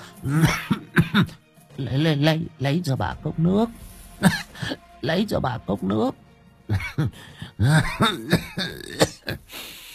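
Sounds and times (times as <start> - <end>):
speech: 0.2 - 9.8
voice imitating an old woman coughing hard: 0.3 - 1.3, 6.7 - 9.4.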